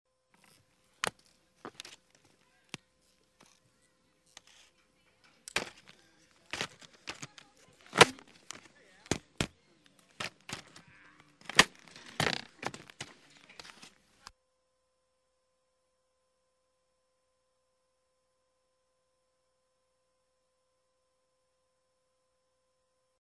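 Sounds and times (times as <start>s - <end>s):
ski boot buckle: 0.4s - 3.6s, 5.4s - 14.3s.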